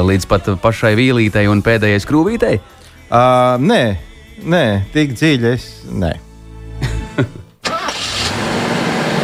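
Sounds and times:
speech: 0:00.0 - 0:06.3, 0:07.2 - 0:07.4
car engine cranking and starting: 0:07.6 - 0:09.2.

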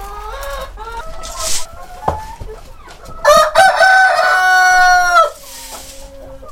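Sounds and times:
flock of hens clucking: 0:00.0 - 0:06.5
rooster crowing: 0:03.2 - 0:05.4.

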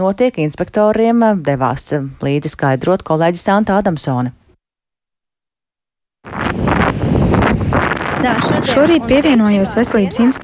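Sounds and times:
speech: 0:00.0 - 0:04.4, 0:08.2 - 0:10.4
strong wind buffeting the microphone at a seaside beach: 0:06.3 - 0:10.4
surf washing in at a seaside beach: 0:06.3 - 0:10.4.

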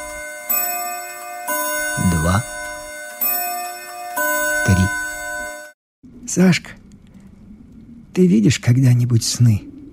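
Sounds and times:
clock chiming the hour: 0:00.0 - 0:05.8
speech: 0:02.0 - 0:02.5, 0:06.3 - 0:06.8, 0:08.2 - 0:09.7.

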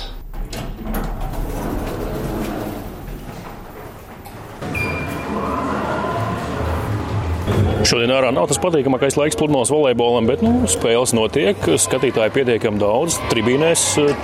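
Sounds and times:
lift doors sliding open in a radio building: 0:00.0 - 0:07.7
speech: 0:07.8 - 0:14.2.

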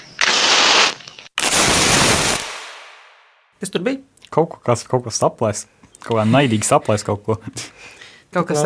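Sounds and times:
match flaring with a hiss: 0:00.2 - 0:02.9
speech: 0:03.7 - 0:07.7, 0:08.3 - 0:08.6.

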